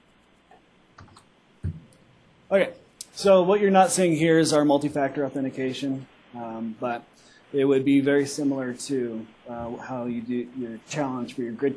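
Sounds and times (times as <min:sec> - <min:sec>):
low steady hum: 0:00.0 - 0:11.7
computer mouse clicking: 0:00.2 - 0:01.9
speech: 0:02.5 - 0:11.7.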